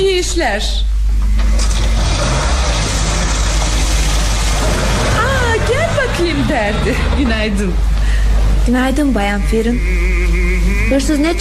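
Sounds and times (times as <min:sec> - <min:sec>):
speech: 0:00.3 - 0:01.7, 0:06.0 - 0:07.9, 0:08.7 - 0:11.3
car engine starting and rumbling: 0:01.3 - 0:08.8.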